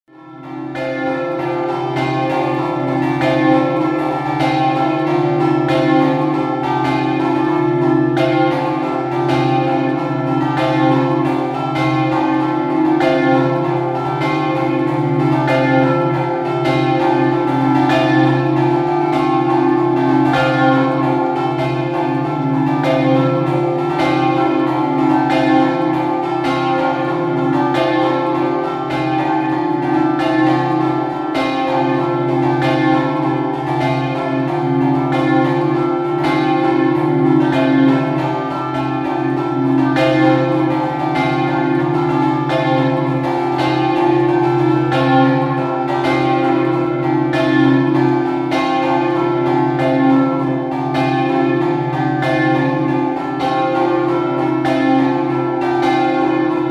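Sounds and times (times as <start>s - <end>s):
festive church bell chiming: 0.1s - 56.6s.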